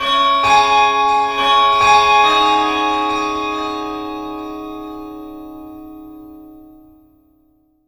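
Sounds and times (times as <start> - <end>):
pivot chime: 0.0 - 7.8.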